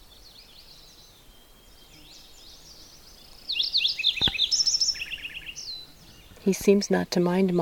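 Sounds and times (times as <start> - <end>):
Lincoln's sparrow singing a bubbling warble: 0.0 - 7.5
speech: 6.5 - 7.6.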